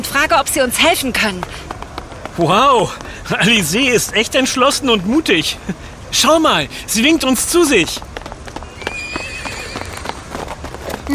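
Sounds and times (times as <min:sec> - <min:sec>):
speech: 0:00.2 - 0:01.7, 0:02.3 - 0:08.1
horses galloping across a town square with hooves clattering: 0:00.2 - 0:05.6, 0:07.0 - 0:11.1
horse whinnying: 0:08.6 - 0:10.4.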